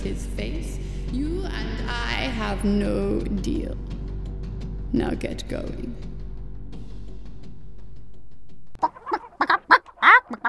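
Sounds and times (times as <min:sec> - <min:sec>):
low steady hum: 0:00.0 - 0:08.8
speech: 0:00.2 - 0:03.9, 0:04.9 - 0:06.1
chicken clucking and squawking: 0:08.8 - 0:10.4.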